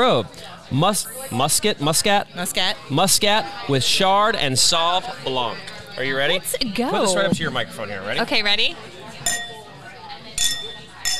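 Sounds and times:
speech: 0.0s - 8.9s
wine glasses clinking in a toast: 9.2s - 9.7s, 10.4s - 11.1s.

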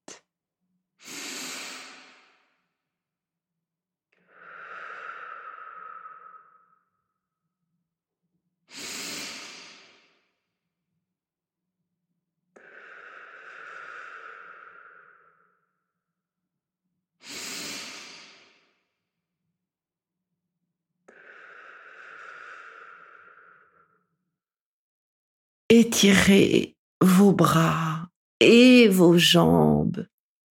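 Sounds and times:
deep energizing breaths: 1.0s - 2.9s, 4.2s - 7.1s, 8.7s - 10.5s, 12.6s - 15.9s, 17.2s - 19.0s, 21.1s - 24.2s
speech: 25.7s - 30.1s.

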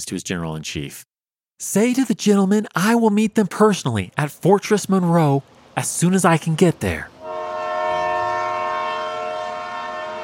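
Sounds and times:
speech: 0.0s - 7.2s
train horn blaring in one long steady chord: 7.2s - 10.2s.

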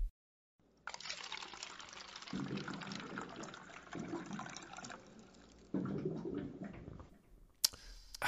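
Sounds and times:
water pouring into a container from a water cooler: 0.9s - 6.8s.

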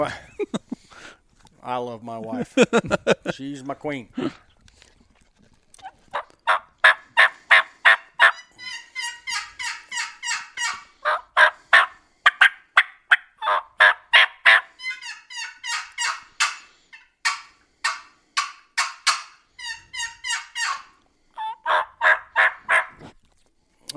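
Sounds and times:
speech: 0.0s - 0.5s, 1.6s - 4.4s
laughter: 0.0s - 0.8s, 2.2s - 3.4s
turkey hen box call yelps and clucks: 5.8s - 23.0s.

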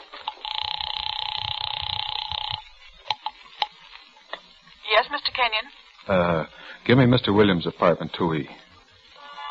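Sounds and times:
house phone dial tone: 0.3s - 2.7s
speech: 5.4s - 8.7s.

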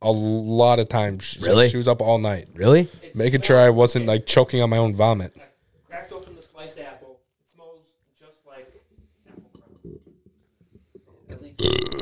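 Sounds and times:
speech: 0.0s - 6.8s, 11.6s - 12.0s
loud drawn-out burp into the microphone: 11.6s - 12.0s.

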